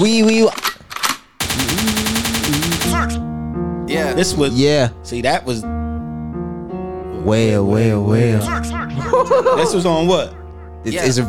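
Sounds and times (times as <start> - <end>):
speech: 0.0 - 0.7, 3.9 - 5.8, 7.2 - 11.2
rapid-fire gunshots: 1.4 - 3.2
laughter: 9.0 - 10.1.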